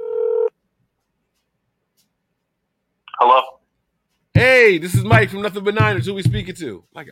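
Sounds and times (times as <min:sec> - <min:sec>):
electronic telephone tone as a phone call is placed: 0:00.0 - 0:00.5
speech: 0:04.4 - 0:07.0.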